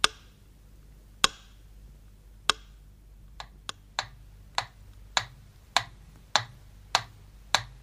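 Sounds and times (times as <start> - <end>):
metronome ticking at a slow pace: 0.0 - 0.4, 1.2 - 1.6, 2.4 - 7.8
faint low hum: 0.0 - 7.8.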